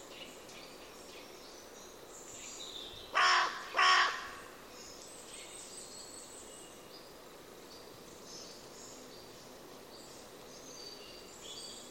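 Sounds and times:
faint background hiss: 0.0s - 11.8s
bird cawing: 3.2s - 4.5s.

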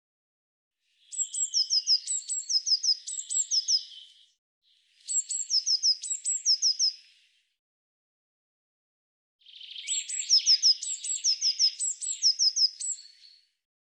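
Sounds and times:
Eurasian blue tit uttering high sharp notes and descending chips: 1.1s - 4.1s, 5.1s - 7.0s, 9.5s - 13.3s.

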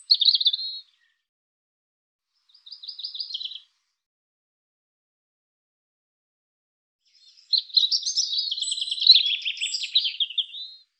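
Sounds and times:
European robin twittering song: 0.0s - 1.2s, 2.4s - 3.8s, 7.0s - 10.9s.

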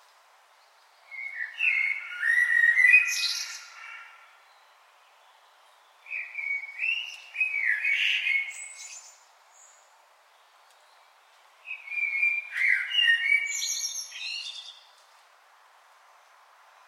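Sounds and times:
common blackbird singing, Turdus merula: 0.9s - 9.9s, 10.8s - 15.0s.

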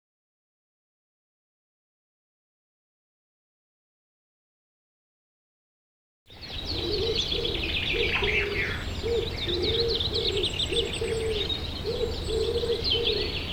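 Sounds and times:
small birds chirping and twittering: 6.3s - 13.5s
Common wood pigeon cooing: 6.4s - 13.5s.

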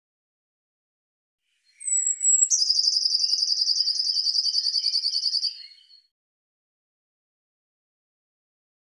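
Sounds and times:
Eurasian blue tit whistle and buzzy trill: 1.6s - 6.1s.

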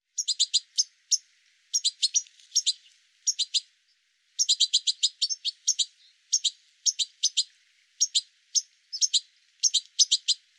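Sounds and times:
bird calling in clusters of quick high clipped chirps: 0.1s - 10.5s.

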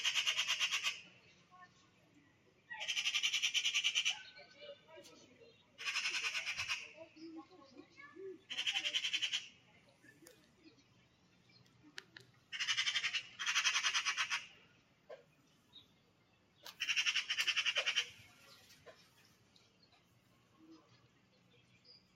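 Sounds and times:
Eurasian magpie rattling chatter: 0.0s - 1.0s, 2.8s - 4.3s, 5.8s - 7.0s, 8.5s - 9.6s, 12.5s - 14.5s, 16.7s - 18.3s.

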